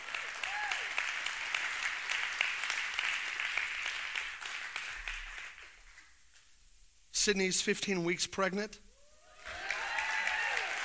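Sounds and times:
crowd applauding in a large room: 0.0s - 6.1s, 9.4s - 10.8s
speech: 7.2s - 8.8s.

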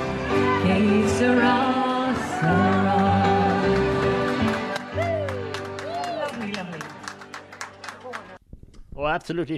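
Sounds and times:
large crowd cheering in a pub on New Year's night: 0.2s - 8.4s
scattered clapping in a pub: 1.9s - 8.4s
speech: 9.0s - 9.5s.

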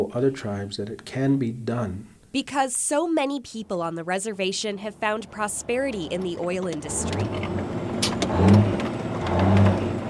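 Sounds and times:
speech: 0.0s - 7.6s
truck engine revving: 4.9s - 10.0s.

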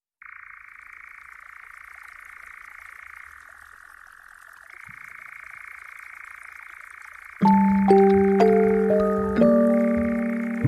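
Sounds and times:
European nightjar churring: 0.2s - 10.6s.

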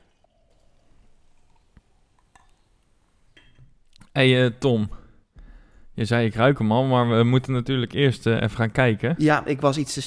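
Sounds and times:
non-alcoholic beer poured into a glass: 0.0s - 2.9s
speech: 4.2s - 5.0s, 6.0s - 10.0s.

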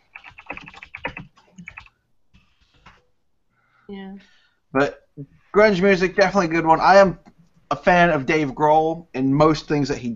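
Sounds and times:
rapid typing on a computer keyboard: 0.0s - 2.0s
speech: 3.9s - 10.1s.

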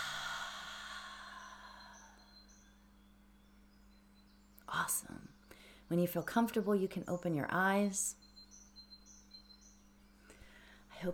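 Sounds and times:
long soft exhalation of breath: 0.0s - 2.3s
faint hum: 0.0s - 11.1s
speech: 5.9s - 8.2s.

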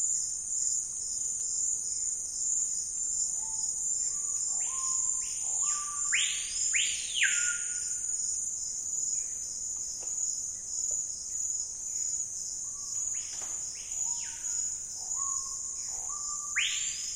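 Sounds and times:
shrill insect chorus in the Amazon rainforest: 3.2s - 9.4s, 11.4s - 17.1s.

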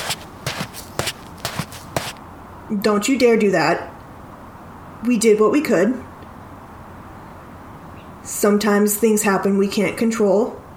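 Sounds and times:
heavy stomping footsteps on a hard floor: 0.0s - 2.2s
speech: 2.7s - 3.9s, 5.0s - 6.1s, 8.4s - 10.6s.

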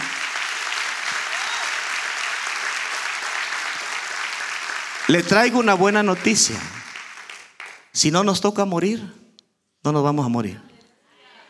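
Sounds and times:
audience applauding: 0.0s - 8.0s
speech: 5.1s - 6.8s, 8.0s - 9.2s, 9.8s - 10.7s.

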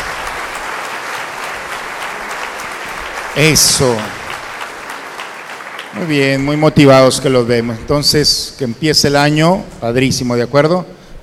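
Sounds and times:
audience applause: 0.0s - 6.9s
speech: 3.4s - 4.2s, 6.0s - 11.0s.

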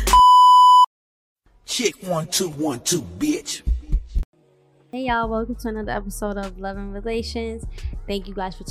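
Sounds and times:
loud steady electronic beep: 0.1s - 0.9s
speech: 1.8s - 3.7s, 4.9s - 8.6s.

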